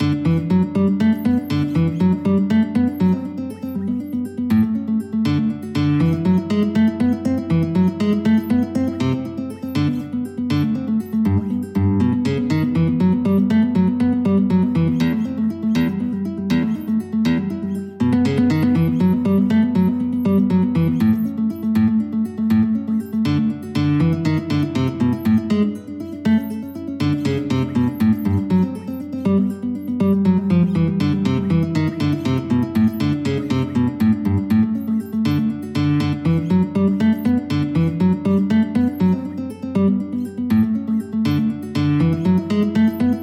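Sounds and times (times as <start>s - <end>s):
caprice on guitar: 0.0s - 43.2s.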